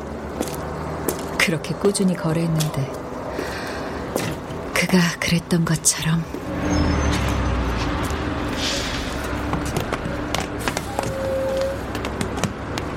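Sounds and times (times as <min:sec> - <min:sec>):
city bus engine pulling up at a stop: 0:00.0 - 0:12.9
steady traffic rumble: 0:00.0 - 0:12.9
speech: 0:01.5 - 0:03.5, 0:04.8 - 0:06.8
faint tonal squeal: 0:06.5 - 0:07.7, 0:10.8 - 0:11.9.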